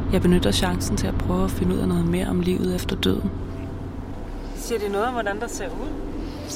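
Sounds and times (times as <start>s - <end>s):
speech: 0.1s - 3.6s, 4.7s - 6.5s
car driving fast on the way to a shopping centre: 3.3s - 6.5s.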